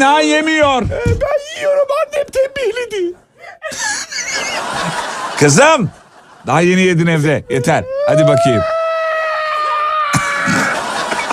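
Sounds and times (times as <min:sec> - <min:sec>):
speech: 0:00.0 - 0:08.8
laughter: 0:03.6 - 0:09.1, 0:09.7 - 0:11.3
exaggerated crying sound effect: 0:07.5 - 0:10.8.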